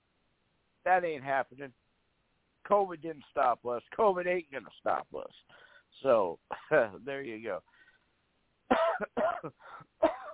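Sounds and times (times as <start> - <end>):
speech: 0.8 - 1.8, 2.7 - 7.7, 8.7 - 10.3
harsh coughing: 8.7 - 10.3.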